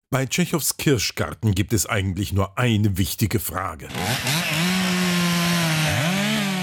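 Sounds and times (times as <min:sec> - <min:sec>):
speech: 0:00.1 - 0:04.7
chainsaw running: 0:03.9 - 0:06.6.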